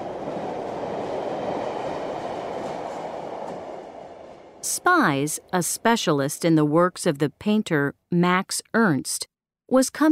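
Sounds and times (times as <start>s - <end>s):
train travelling from Paris to Sète rolling along rails: 0.0s - 5.8s
speech: 4.6s - 10.0s.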